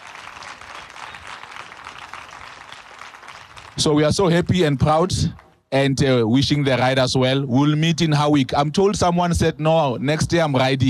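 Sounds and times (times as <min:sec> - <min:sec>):
crowd applauding steadily: 0:00.0 - 0:04.1
speech: 0:03.8 - 0:10.8.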